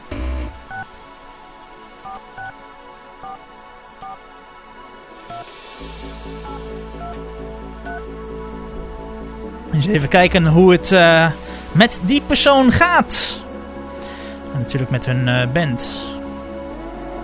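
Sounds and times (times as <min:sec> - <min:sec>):
telephone keypad dialing tones: 0:02.1 - 0:02.5
low hum: 0:05.7 - 0:11.7
speech: 0:09.8 - 0:13.4, 0:14.6 - 0:16.1.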